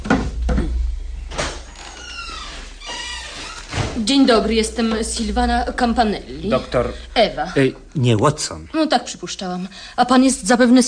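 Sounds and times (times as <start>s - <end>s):
door opening and creaking: 0.0s - 6.1s
speech: 4.0s - 10.8s.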